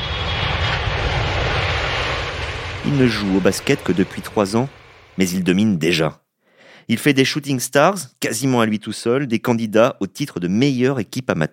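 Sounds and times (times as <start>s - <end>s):
airplane engine drone: 0.0s - 5.2s
speech: 2.9s - 6.2s, 6.9s - 11.5s.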